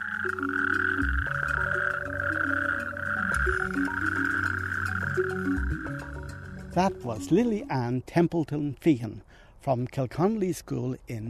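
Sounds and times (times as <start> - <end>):
natterjack toads calling in a rattling chorus: 0.0 - 7.4
soft melodic tones: 0.0 - 8.5
speech: 5.2 - 6.2, 6.8 - 11.2.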